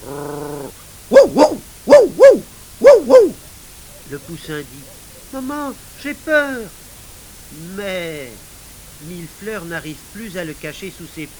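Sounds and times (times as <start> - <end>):
speech: 0.0 - 0.3, 4.2 - 6.8, 7.5 - 11.3
dog barking: 0.0 - 5.4.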